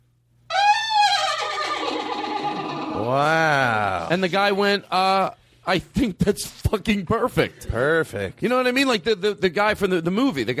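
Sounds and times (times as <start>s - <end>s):
horse neighing: 0.5s - 4.1s
speech: 3.1s - 3.5s, 4.1s - 10.5s.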